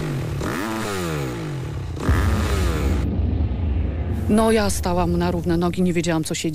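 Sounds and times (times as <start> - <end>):
motorcycle roaring past: 0.0 - 4.3
speech: 4.3 - 6.5.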